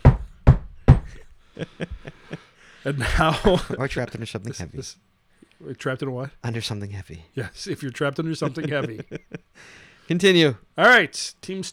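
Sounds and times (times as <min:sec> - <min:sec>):
knocking on a wooden coffin lid: 0:00.0 - 0:01.2
laughter: 0:01.1 - 0:03.8, 0:07.6 - 0:09.5
speech: 0:01.6 - 0:11.7.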